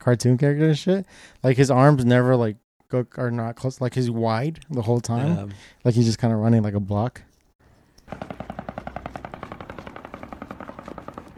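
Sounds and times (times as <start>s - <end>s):
speech: 0.0s - 7.3s, 8.1s - 8.4s
long burst of rapid automatic gunfire: 8.1s - 11.3s.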